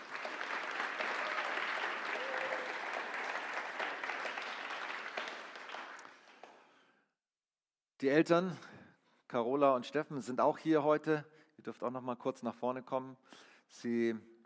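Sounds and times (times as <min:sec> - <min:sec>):
audience applause: 0:00.0 - 0:06.6
speech: 0:08.0 - 0:08.7, 0:09.3 - 0:14.3.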